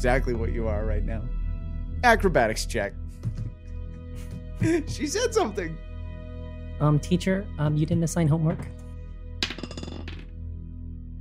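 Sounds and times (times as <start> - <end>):
speech: 0.0 - 1.4, 2.0 - 3.4, 4.2 - 5.8, 6.8 - 8.8
dice picked up from a table during a tabletop game: 9.4 - 10.3.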